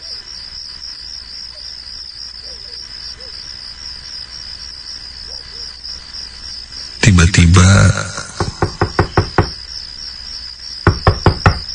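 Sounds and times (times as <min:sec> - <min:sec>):
steady high cricket-like chirr: 0:00.0 - 0:11.7
speech: 0:07.5 - 0:08.2
knocking on a bedroom door: 0:08.2 - 0:09.6, 0:10.8 - 0:11.7.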